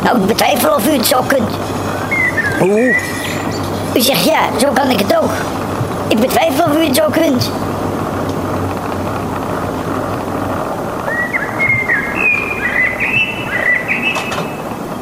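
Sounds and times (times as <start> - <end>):
speech: 0.0 - 1.8, 2.5 - 3.3, 3.9 - 7.7
steady rushing noise: 0.0 - 15.0
birds singing: 0.5 - 4.7, 11.0 - 15.0.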